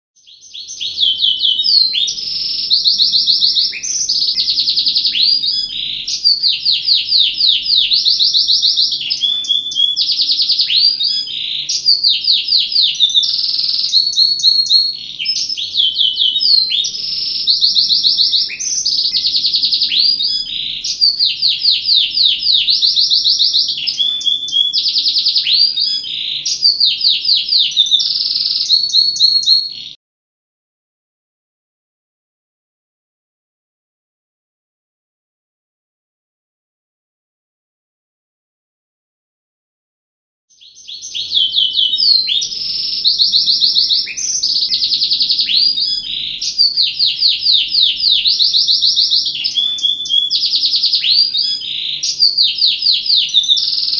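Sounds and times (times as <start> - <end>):
modified gladiator canary singing: 0.2 - 30.0, 40.5 - 53.9.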